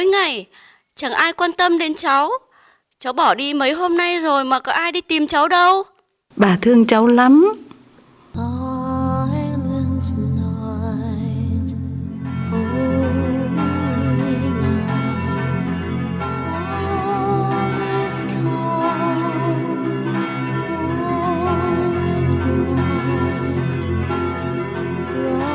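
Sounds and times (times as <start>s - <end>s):
speech: 0.0s - 7.6s
choir singing: 8.4s - 25.5s
church bells ringing on Christmas night: 9.8s - 25.5s.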